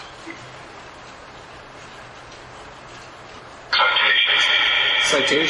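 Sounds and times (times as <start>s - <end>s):
Phasma Box ghost box device noise in an attic: 3.7s - 5.4s.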